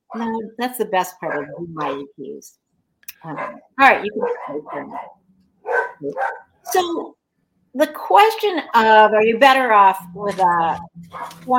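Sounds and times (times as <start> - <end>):
speech: 0.2 - 2.6, 3.2 - 5.2, 6.0 - 11.5
puppies barking: 3.2 - 6.7, 11.1 - 11.4.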